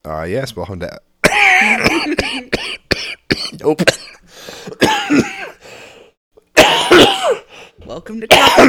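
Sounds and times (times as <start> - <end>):
speech: 0.0 - 1.1, 3.6 - 4.0
person coughing in quick bursts: 1.2 - 5.6, 6.6 - 7.5, 8.3 - 8.6.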